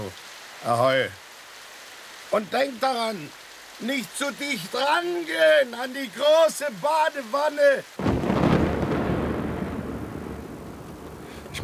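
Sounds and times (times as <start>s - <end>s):
steady hiss: 0.0s - 11.6s
speech: 0.1s - 1.2s, 2.3s - 8.1s
distant thunder from a passing thunderstorm over the sea: 8.0s - 11.6s.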